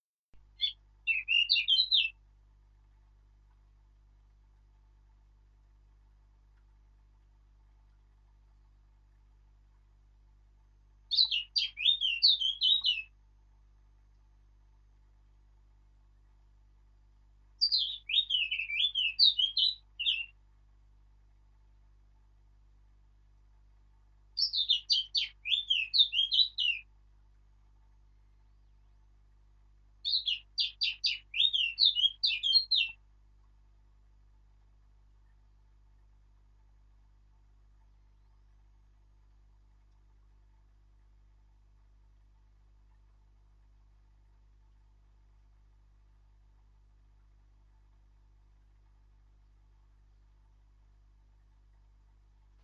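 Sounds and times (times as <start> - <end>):
Sylvia atricapilla singing: 0.6 - 2.2, 11.1 - 13.1, 17.6 - 20.4, 24.4 - 26.8, 30.0 - 33.0.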